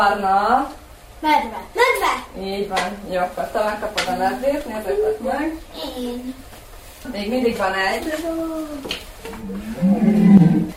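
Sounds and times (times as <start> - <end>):
speech: 0.0 - 10.7
red deer stag roaring: 9.4 - 10.7.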